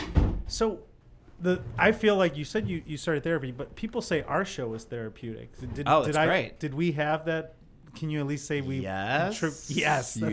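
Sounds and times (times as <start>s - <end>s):
door pushed shut with a dull thud: 0.0s - 0.5s
speech: 0.5s - 10.3s
voice fragment: 9.3s - 10.3s.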